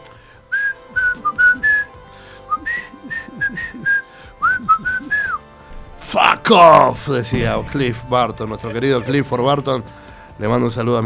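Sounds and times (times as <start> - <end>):
man whistling a lively tune: 0.4 - 5.5
speech: 6.5 - 11.0.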